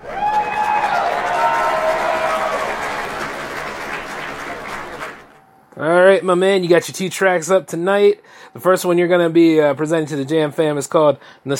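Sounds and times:
high cheers: 0:00.0 - 0:05.3
audience clapping: 0:00.0 - 0:05.4
speech: 0:06.2 - 0:11.5.

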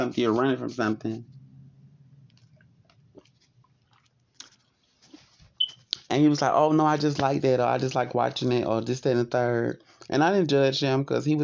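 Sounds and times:
speech: 0:00.0 - 0:01.4, 0:06.1 - 0:11.4
person sipping water with soft wet slurps: 0:02.3 - 0:05.3
swallowing: 0:02.4 - 0:04.7.

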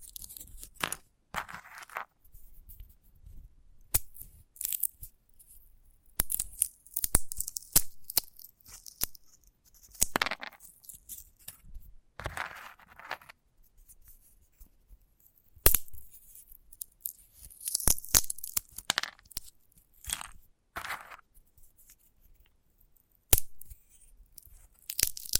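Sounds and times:
crisp snaps and scratches from handling a sunflower head: 0:00.0 - 0:02.8, 0:06.2 - 0:11.6, 0:12.2 - 0:13.4, 0:15.6 - 0:22.6, 0:23.3 - 0:25.3.

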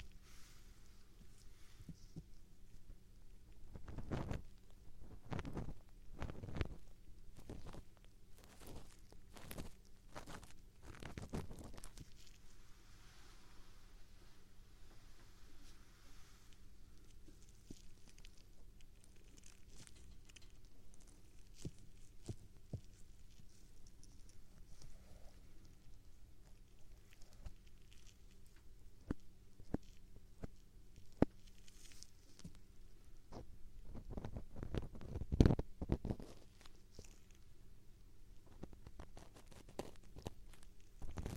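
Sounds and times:
ear-cleaning scratching and brushing with a feather wand and an ear pick: 0:00.0 - 0:37.6, 0:38.3 - 0:41.3
quiet rustling: 0:00.0 - 0:41.3.

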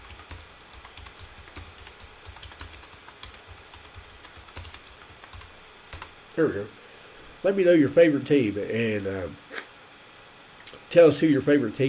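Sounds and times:
typing on a computer keyboard: 0:00.0 - 0:06.1
speech: 0:06.4 - 0:06.8, 0:07.4 - 0:09.4, 0:10.9 - 0:11.8.

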